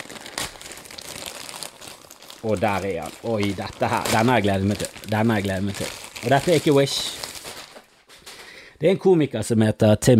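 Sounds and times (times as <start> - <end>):
paper crinkling and rustling as a mailed parcel is unwrapped: 0.0 - 8.5
speech: 2.4 - 7.2, 8.8 - 10.1.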